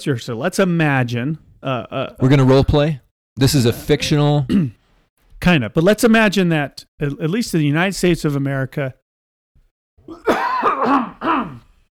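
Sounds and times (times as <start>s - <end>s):
speech: 0.0s - 4.8s, 5.4s - 9.0s
person clearing throat: 4.4s - 4.8s, 10.0s - 11.8s.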